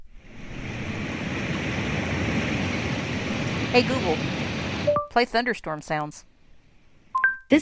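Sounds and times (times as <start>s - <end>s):
river flowing: 0.1s - 5.1s
speech: 3.7s - 4.4s, 5.2s - 6.3s.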